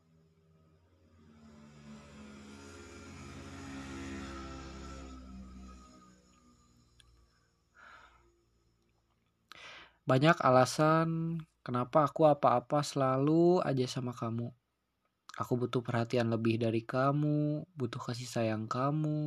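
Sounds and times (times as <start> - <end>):
motorcycle passing by: 0.0 - 8.7
speech: 10.1 - 14.6, 15.4 - 19.2.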